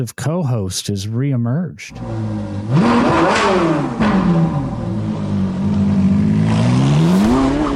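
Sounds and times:
speech: 0:00.0 - 0:05.0
car engine revving: 0:01.9 - 0:07.7.

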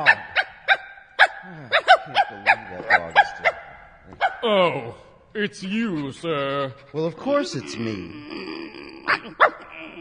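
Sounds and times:
dog giving sharp gruff growling barks: 0:00.0 - 0:04.5, 0:07.6 - 0:09.9
speech: 0:04.4 - 0:08.6.

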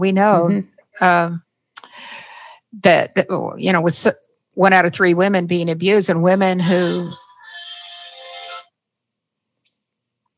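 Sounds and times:
speech: 0:00.0 - 0:01.4, 0:02.8 - 0:07.2
phone ringtone playing a bright tonal melody: 0:06.6 - 0:08.7.

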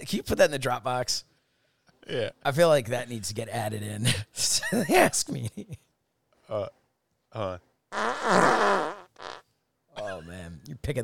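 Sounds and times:
speech: 0:00.0 - 0:01.3, 0:02.0 - 0:05.8, 0:06.5 - 0:08.9, 0:10.2 - 0:11.0
fart sound effect: 0:08.0 - 0:09.4.

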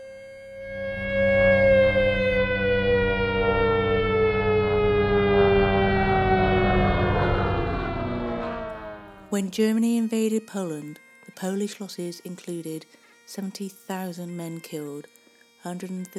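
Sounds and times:
low mechanical drone: 0:00.0 - 0:09.4
air raid siren wailing: 0:00.0 - 0:09.5
speech: 0:09.4 - 0:16.1.

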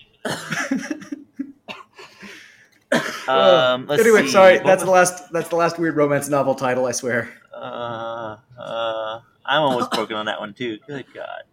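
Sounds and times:
person coughing and sputtering after choking on a cough drop: 0:00.2 - 0:02.2, 0:02.9 - 0:04.3, 0:09.7 - 0:10.2
speech: 0:03.3 - 0:07.8, 0:09.5 - 0:11.5.

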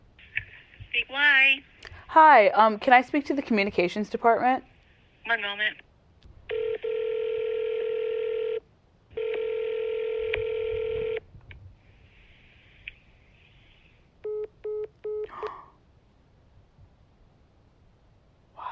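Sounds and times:
speech: 0:01.0 - 0:05.8
disconnected phone line tone: 0:06.5 - 0:11.2.

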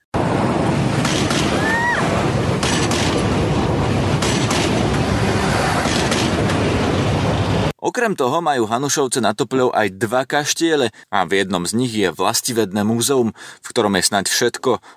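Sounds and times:
train rumbling past: 0:00.2 - 0:07.7
speech: 0:08.0 - 0:14.9.

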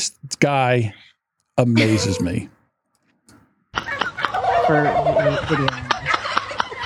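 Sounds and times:
speech: 0:00.2 - 0:01.0, 0:01.6 - 0:02.6, 0:04.7 - 0:05.9
laughter: 0:01.6 - 0:02.5, 0:03.8 - 0:06.8
turkeys gobbling: 0:03.8 - 0:06.8.

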